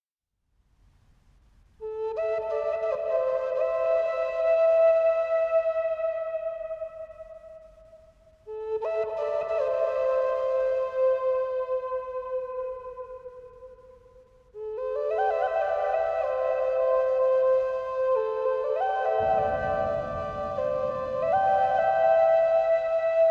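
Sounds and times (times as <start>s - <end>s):
Asian zen spa meditation music: 1.8s - 23.3s
rain storm: 19.0s - 23.3s.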